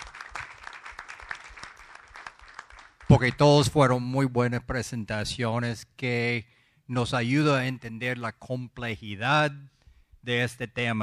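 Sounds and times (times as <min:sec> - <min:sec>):
faint audience applause for presentations: 0:00.0 - 0:03.4
speech: 0:03.1 - 0:11.0.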